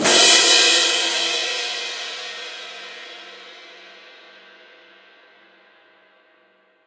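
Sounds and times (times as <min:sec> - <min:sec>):
cymbals crashing: 0:00.0 - 0:03.2.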